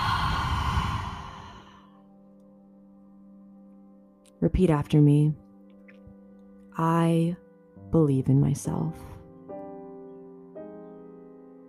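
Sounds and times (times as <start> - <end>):
deep breath exhaled: 0.0 - 2.0
speech: 4.4 - 5.4, 6.8 - 9.1.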